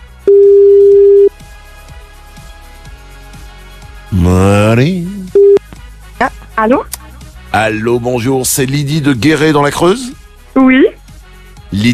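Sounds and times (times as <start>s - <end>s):
telephone ringback tone of an outgoing call: 0.3s - 1.3s, 5.4s - 5.6s
speech: 4.1s - 5.0s, 6.6s - 6.9s, 7.6s - 11.0s, 11.7s - 11.9s.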